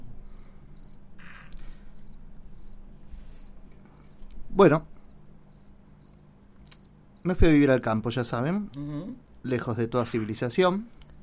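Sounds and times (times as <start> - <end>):
low hum: 0.0 - 11.2
cricket chirping in a rural countryside setting: 0.2 - 4.2, 5.0 - 8.0
speech: 4.6 - 4.9, 7.2 - 11.0.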